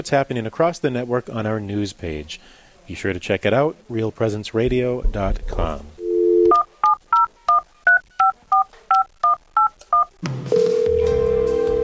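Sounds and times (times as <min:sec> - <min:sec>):
speech: 0:00.0 - 0:05.9
telephone touch-tone dialing beeps: 0:06.0 - 0:11.8
telephone dial tone: 0:10.5 - 0:11.8.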